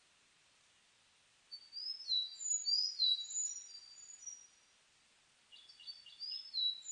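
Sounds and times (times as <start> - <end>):
Sakhalin leaf warbler song: 1.5 - 4.7, 5.5 - 6.8.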